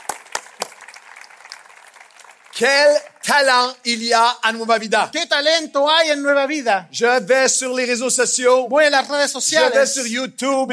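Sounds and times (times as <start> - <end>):
audience applause at a bilingual community talent gathering: 0.0 - 3.8
speech: 2.6 - 10.7.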